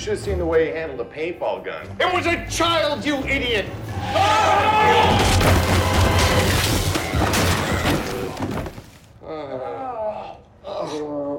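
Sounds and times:
speech: 0:00.0 - 0:05.6, 0:09.3 - 0:11.3
small scooter crashing into people: 0:05.1 - 0:09.0
boxes tumbling and clattering: 0:05.2 - 0:09.2.

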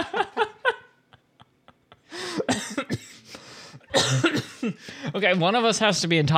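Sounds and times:
laughter: 0:00.0 - 0:02.5
harsh fit of repeated coughing: 0:02.3 - 0:03.3, 0:03.9 - 0:04.8
speech: 0:04.1 - 0:06.3.

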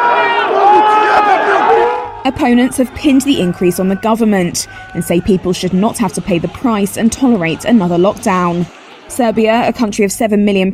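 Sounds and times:
protest crowd in Serbia shouting and chanting: 0:00.0 - 0:09.8
speech: 0:02.3 - 0:10.7.

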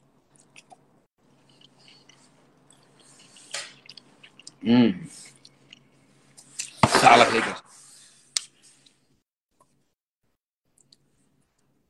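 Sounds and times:
chewing food while eating: 0:00.2 - 0:04.6, 0:05.2 - 0:06.8
speech: 0:04.6 - 0:05.2, 0:07.1 - 0:07.6.

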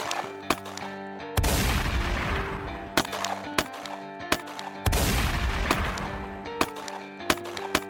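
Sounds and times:
bank robber firing a shotgun: 0:00.0 - 0:07.8
gunshots in a shootout between a police officer and a bank robber: 0:00.0 - 0:07.8.

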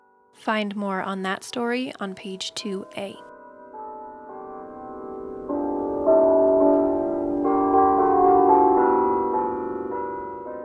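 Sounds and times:
speech: 0:00.4 - 0:03.3
church bell ringing: 0:03.2 - 0:10.6.

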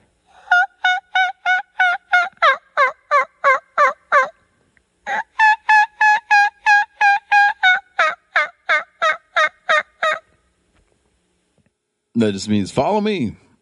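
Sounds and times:
turkey hen giving a kiki run call: 0:00.3 - 0:10.4
speech: 0:12.2 - 0:13.4.

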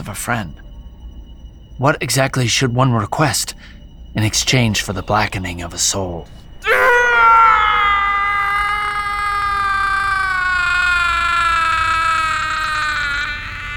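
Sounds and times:
speech: 0:00.1 - 0:00.6, 0:01.8 - 0:06.9
man's long agonized dying scream: 0:06.6 - 0:13.7.

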